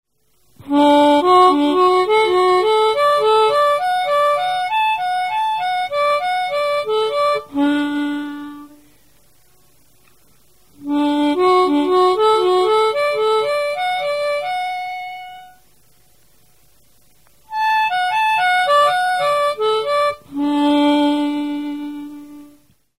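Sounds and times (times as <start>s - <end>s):
harmonica sliding: 0.6s - 8.8s, 10.8s - 15.6s, 17.5s - 22.6s.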